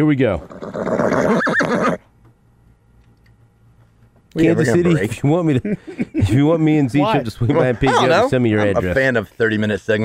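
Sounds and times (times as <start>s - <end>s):
speech: 0.0s - 2.1s, 4.4s - 10.0s
horse neighing: 0.4s - 2.0s.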